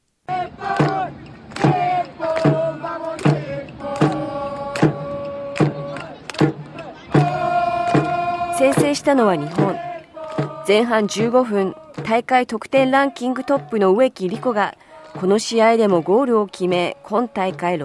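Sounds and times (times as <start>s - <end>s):
football supporters and cheerleading group cheering: 0.3s - 12.0s
football supporters chanting in unison at a stadium in Sydney: 0.3s - 12.1s, 12.7s - 17.8s
loud steady drumbeats of football supporters: 0.3s - 17.8s
speech: 9.0s - 9.9s, 10.7s - 17.8s.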